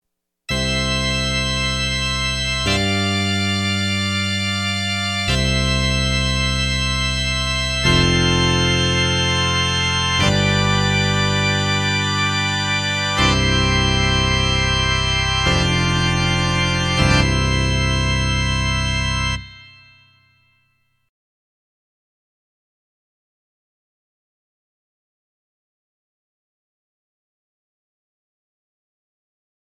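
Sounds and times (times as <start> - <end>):
pipe organ: 0.5 - 20.5.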